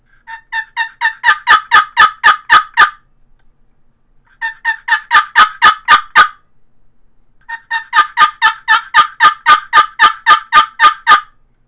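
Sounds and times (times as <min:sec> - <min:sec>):
golden deluxe poplar custom box call making turkey yelps: 0:00.2 - 0:03.0, 0:04.3 - 0:06.4, 0:07.4 - 0:11.4.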